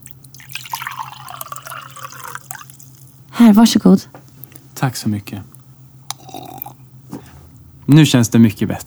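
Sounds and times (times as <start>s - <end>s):
water drawn up and poured from a well: 0.0s - 3.2s
low hum: 0.0s - 8.8s
scattered drips of water: 0.0s - 8.8s
speech: 3.4s - 4.2s, 4.8s - 5.5s, 7.9s - 8.8s.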